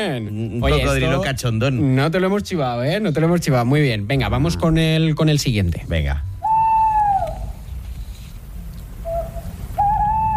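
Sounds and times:
speech: 0:00.0 - 0:06.3
steady low rumble: 0:00.2 - 0:10.3
owl hooting: 0:06.3 - 0:10.3.

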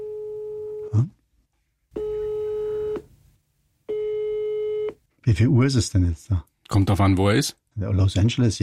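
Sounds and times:
telephone ringing tone of an unanswered phone call: 0:00.0 - 0:00.9, 0:02.0 - 0:03.0, 0:03.9 - 0:05.0
speech: 0:00.9 - 0:01.2, 0:05.3 - 0:08.6.

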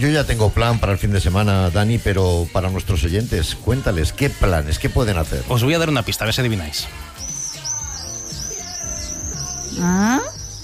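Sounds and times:
speech: 0:00.0 - 0:07.1, 0:09.8 - 0:10.4
shrill high-pitched bird screams: 0:06.9 - 0:10.6
louder lower sweeping call: 0:07.1 - 0:10.6.

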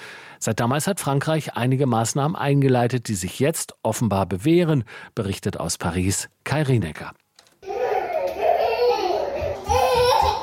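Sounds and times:
speech: 0:00.4 - 0:07.2
toddlers fussing and babbling in an air-conditioned basement room: 0:07.6 - 0:10.4.

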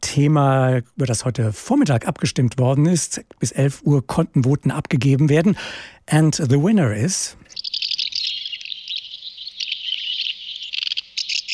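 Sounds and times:
speech: 0:00.1 - 0:07.6
common house martins twittering: 0:07.4 - 0:11.5.

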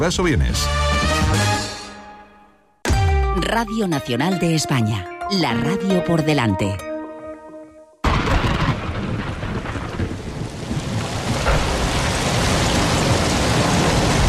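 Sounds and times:
speech: 0:00.0 - 0:01.6, 0:03.4 - 0:06.9
deep thunder rumble: 0:08.0 - 0:14.2
heavy rain pouring: 0:08.1 - 0:14.2.

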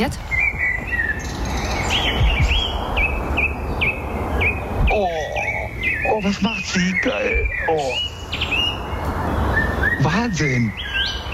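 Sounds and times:
speech: 0:00.0 - 0:00.9, 0:06.2 - 0:08.1, 0:10.0 - 0:10.8
bird whistling short rising phrases outdoors: 0:01.9 - 0:08.8, 0:09.5 - 0:11.2.

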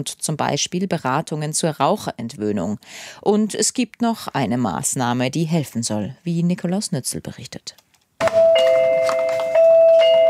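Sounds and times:
speech: 0:00.0 - 0:07.8
pharmacy shop door electronic chime: 0:08.2 - 0:10.2.

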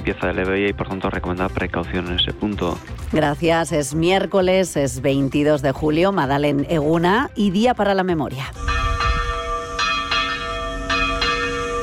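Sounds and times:
speech: 0:00.0 - 0:08.7
church bells ringing in a peal: 0:08.6 - 0:11.8.

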